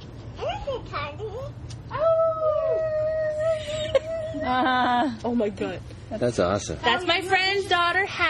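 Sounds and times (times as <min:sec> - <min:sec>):
low hum: 0:00.0 - 0:08.2
speech: 0:00.7 - 0:02.1, 0:04.4 - 0:08.2
young girl howling like a wolf: 0:01.9 - 0:04.5.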